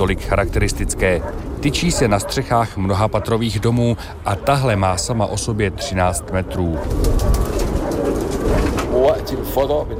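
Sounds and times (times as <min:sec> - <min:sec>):
speech: 0:00.0 - 0:07.6, 0:09.0 - 0:09.9
steady low outdoor rumble: 0:00.0 - 0:09.9
bred pigeons cooing in a rooftop loft in Cairo: 0:00.9 - 0:09.9.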